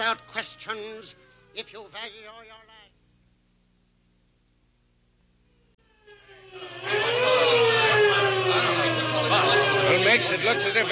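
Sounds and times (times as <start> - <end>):
police car siren wailing: 0.0 - 2.7, 5.8 - 10.9
speech: 0.0 - 2.8, 10.0 - 10.9.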